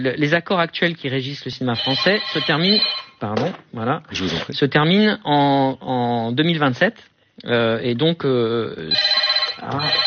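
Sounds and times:
speech: 0.0s - 10.0s
telephone ringing in a hotel room in Cannes: 1.7s - 3.2s, 8.9s - 10.0s.

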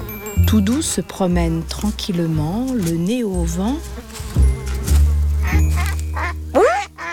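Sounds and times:
speech: 0.5s - 4.5s
ducks quacking: 5.4s - 7.1s.

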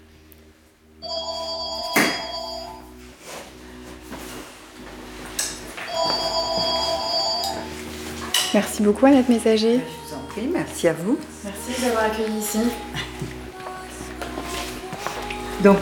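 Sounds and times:
telephone bell ringing: 1.0s - 2.9s, 5.8s - 7.8s
speech: 8.5s - 13.4s, 15.6s - 15.8s.

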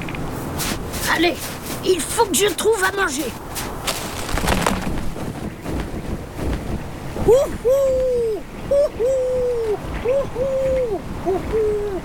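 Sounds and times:
steady wind noise: 0.0s - 12.0s
speech: 1.1s - 3.4s, 7.3s - 12.0s
male snowy owl hooting near its nest: 7.2s - 12.0s.

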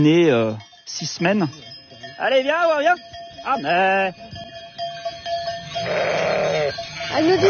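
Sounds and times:
speech: 0.0s - 4.4s, 5.8s - 7.4s
steady ringing tone: 0.0s - 7.4s
sheep bleating: 5.8s - 6.8s.

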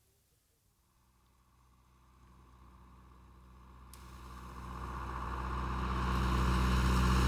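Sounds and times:
tractor engine rumbling along the road: 2.8s - 7.2s.

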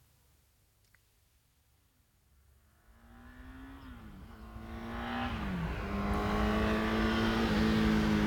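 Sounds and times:
car engine approaching along a road with gear changes: 2.9s - 8.2s.

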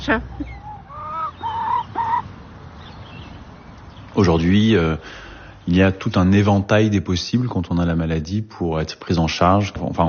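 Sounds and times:
hen clucking: 0.0s - 3.5s
faint low noise: 0.0s - 10.0s
speech: 0.1s - 0.6s, 4.2s - 10.0s.

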